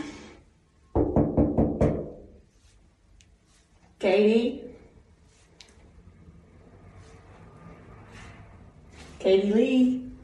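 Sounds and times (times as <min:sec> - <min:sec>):
knocking on a wooden door: 0:01.0 - 0:02.3
speech: 0:04.0 - 0:04.7, 0:09.3 - 0:10.0.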